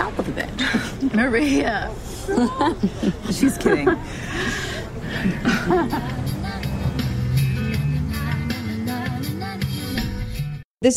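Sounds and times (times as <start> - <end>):
people chattering: 0.0 - 7.3
speech: 0.3 - 6.3
people chuckling: 2.1 - 6.4
soft dreamy pop music playing inside a car: 5.5 - 10.6.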